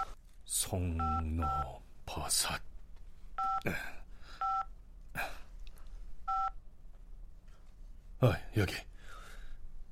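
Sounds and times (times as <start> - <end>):
speech: 0.6 - 2.7, 3.6 - 4.0, 8.2 - 8.9
mobile phone keypad tones: 6.3 - 6.6.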